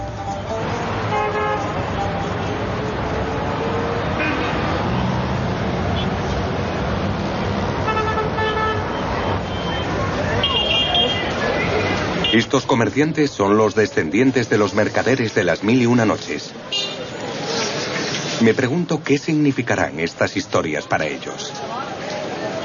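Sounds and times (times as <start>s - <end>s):
dense city traffic engines rumbling in Cairo: 0.0s - 22.6s
car horns honking in Cairo traffic: 0.8s - 2.0s, 4.1s - 5.0s, 5.9s - 6.3s, 7.8s - 12.6s, 16.7s - 17.1s
speech: 12.4s - 16.9s, 18.4s - 21.7s.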